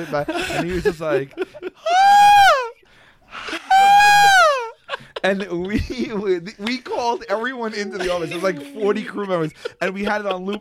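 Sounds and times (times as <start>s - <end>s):
speech: 0.0s - 2.0s, 5.2s - 10.5s
laughter: 0.0s - 10.5s
voice imitating a high falsetto scream: 1.9s - 2.8s, 3.7s - 4.8s.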